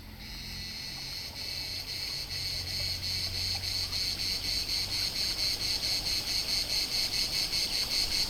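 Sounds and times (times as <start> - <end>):
cicada song: 0.2 - 8.2.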